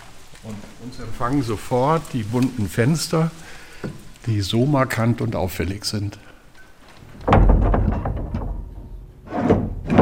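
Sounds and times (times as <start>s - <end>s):
speech: 0.4s - 6.3s
heavy chapel door creaking and grinding: 6.6s - 10.0s
heavy chapel door scraping open at a forest chapel in a national park: 9.2s - 10.0s.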